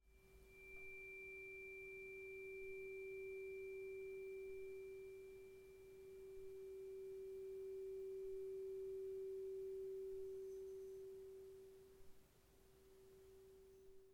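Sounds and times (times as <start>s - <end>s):
chrome magnesium tuning fork tone: 0.0s - 14.1s.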